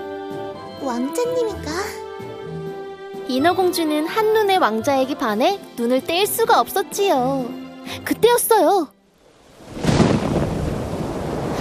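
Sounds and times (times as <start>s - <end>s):
speech: 0.8s - 2.0s, 3.3s - 9.0s
rain: 8.9s - 11.5s
stormy waves crashing: 9.2s - 11.5s
thunder rumbling: 9.4s - 11.5s.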